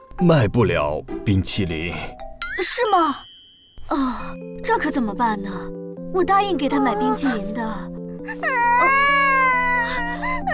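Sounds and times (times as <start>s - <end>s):
steady music: 0.0s - 10.5s
speech: 0.2s - 3.3s, 3.9s - 9.0s
child crying and wailing for ice cream: 6.8s - 10.5s.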